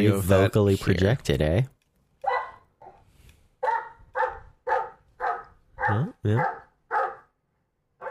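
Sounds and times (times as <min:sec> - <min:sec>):
speech: 0:00.0 - 0:01.8, 0:05.9 - 0:06.6
big dog barking loudly: 0:02.2 - 0:03.0, 0:03.6 - 0:07.4.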